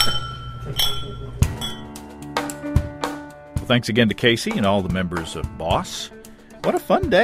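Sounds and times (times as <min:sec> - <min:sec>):
glasses clinking in a toast: 0:00.0 - 0:02.0
speech: 0:03.7 - 0:07.2.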